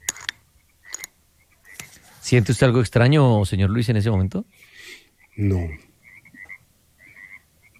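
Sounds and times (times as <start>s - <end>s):
frogs croaking at night: 0.0s - 2.0s, 3.7s - 7.7s
soft steady nighttime ambience: 0.0s - 7.7s
speech: 2.3s - 5.9s.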